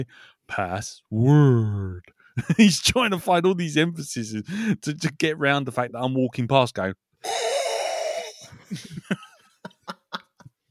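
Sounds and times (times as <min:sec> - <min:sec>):
speech: 0:00.0 - 0:07.5, 0:08.6 - 0:09.2
person imitating heavy wheezy breathing against the microphone: 0:07.2 - 0:08.7
laughter: 0:08.4 - 0:10.5.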